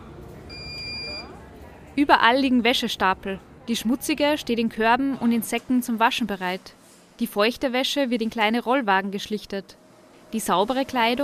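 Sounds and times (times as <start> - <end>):
washing machine electronic beep: 0.5 - 1.3
speech: 2.0 - 11.2.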